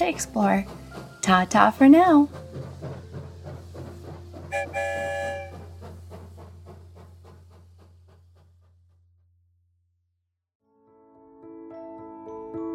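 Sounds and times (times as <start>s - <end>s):
speech: 0.0s - 2.4s
train chugging over a low rumble: 0.0s - 9.0s
train whistle tooting: 4.5s - 5.7s.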